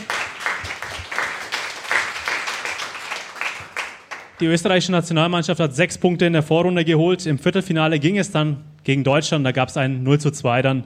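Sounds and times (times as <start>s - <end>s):
crowd applause: 0.0s - 4.4s
speech: 4.4s - 10.8s.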